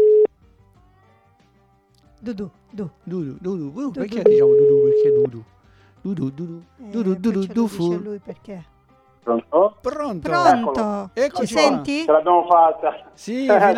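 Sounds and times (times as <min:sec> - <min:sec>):
telephone tone as a call is placed: 0:00.0 - 0:00.3, 0:04.2 - 0:05.4
speech: 0:02.2 - 0:13.7.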